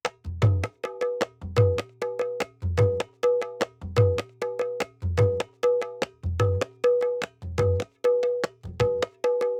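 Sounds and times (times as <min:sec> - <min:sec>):
khol drum loop at 100 BPM in Assamese folk style: 0:00.0 - 0:09.5.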